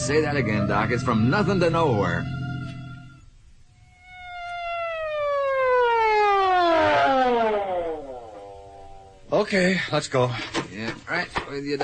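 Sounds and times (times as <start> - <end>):
speech: 0.0 - 2.4, 9.4 - 11.8
emergency vehicle siren wailing downward in pitch: 0.0 - 9.3.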